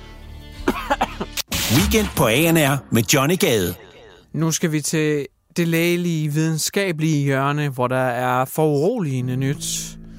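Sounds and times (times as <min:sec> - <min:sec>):
coughs into sleeve: 0:00.6 - 0:01.4
speech: 0:01.7 - 0:10.0.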